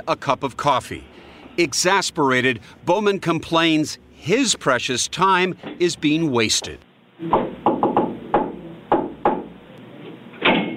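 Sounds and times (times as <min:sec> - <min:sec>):
speech: 0:00.0 - 0:07.4
knocking on a door: 0:07.3 - 0:09.6.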